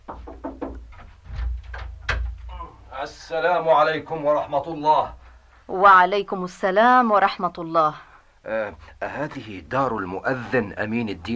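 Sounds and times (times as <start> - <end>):
knock on a house door: 0.0 - 2.4
speech: 3.0 - 11.3.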